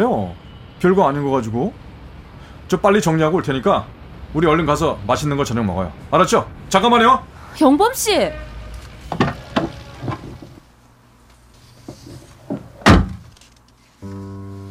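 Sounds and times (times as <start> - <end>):
speech: 0.0 - 1.8, 2.7 - 8.5
clunks and knocks: 9.1 - 10.6, 11.9 - 13.3
car door slamming shut as a man gets out: 12.8 - 13.3.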